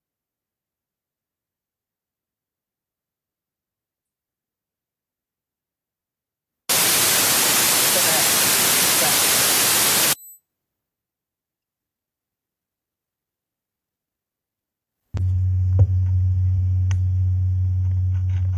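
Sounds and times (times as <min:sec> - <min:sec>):
loud static hiss: 0:06.7 - 0:10.2
low electrical hum: 0:15.2 - 0:18.5.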